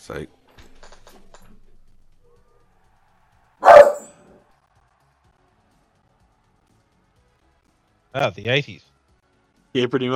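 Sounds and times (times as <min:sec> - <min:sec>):
speech: 0:00.0 - 0:00.4, 0:08.2 - 0:08.9, 0:09.8 - 0:10.1
dog barking: 0:03.6 - 0:04.2.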